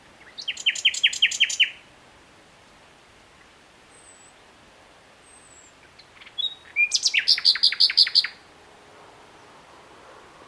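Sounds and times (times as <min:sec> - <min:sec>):
common nightingale song phrase, Luscinia megarhynchos: 0:00.0 - 0:01.9, 0:03.4 - 0:04.6, 0:05.2 - 0:10.4.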